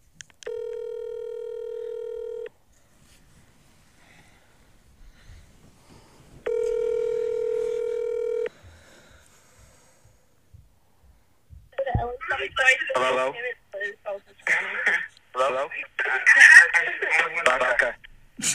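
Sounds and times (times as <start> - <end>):
long steady electronic phone ring tones: 0.4 - 2.5, 6.4 - 8.5
thin band-limited voices of two callers over a phone line: 11.8 - 18.0.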